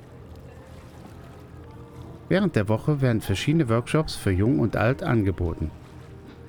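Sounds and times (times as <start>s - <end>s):
traditional rowing boats racing on water: 0.0s - 6.4s
speech: 2.3s - 5.8s.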